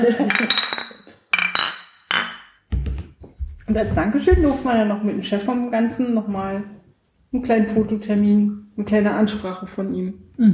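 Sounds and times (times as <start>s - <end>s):
speech: 0.0s - 0.7s, 3.7s - 10.5s
glasses clinking together in a toast: 0.2s - 2.5s.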